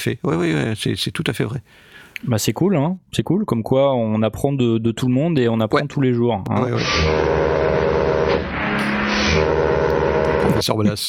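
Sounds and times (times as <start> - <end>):
speech: 0.0 - 7.6, 10.6 - 11.0
car horn honking: 6.6 - 10.6.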